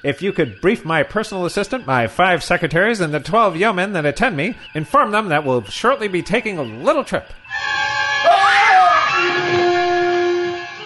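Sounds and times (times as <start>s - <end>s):
speech: 0.0s - 8.6s
person screaming loudly: 8.2s - 9.5s.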